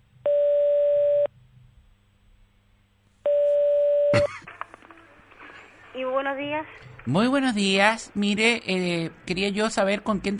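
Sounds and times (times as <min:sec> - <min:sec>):
faint hum: 0:00.0 - 0:10.3
telephone tone of an outgoing call: 0:00.3 - 0:01.3, 0:03.2 - 0:04.1
speech: 0:06.2 - 0:10.3.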